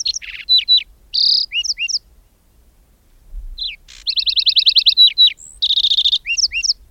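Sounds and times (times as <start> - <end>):
lark sparrow singing whistles, trills and buzzy notes: 0.0 - 2.0, 3.6 - 6.8.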